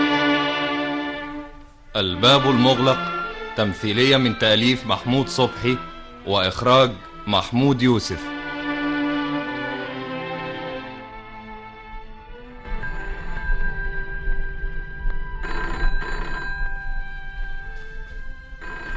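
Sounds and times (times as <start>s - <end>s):
short passage of music: 0.0s - 18.9s
speech: 2.0s - 8.3s
telephone bell ringing in a dramatized household scene: 12.7s - 18.9s.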